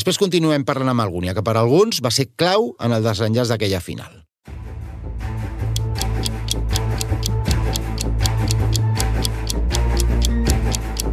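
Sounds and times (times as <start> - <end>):
speech: 0.0 - 4.2
fast ticking clock: 5.7 - 11.1.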